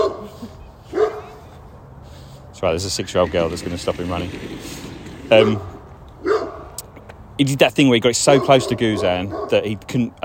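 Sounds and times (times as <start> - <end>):
puppy giving short high-pitched yappy barks: 0.0 - 1.4, 5.3 - 6.7, 8.3 - 9.7
speech: 2.6 - 5.7, 7.4 - 10.2.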